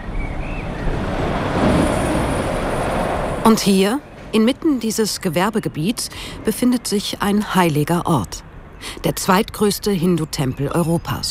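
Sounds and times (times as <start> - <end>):
truck rushing along a street in an industrial area in Hamm: 0.0 - 4.4
speech: 3.5 - 11.2.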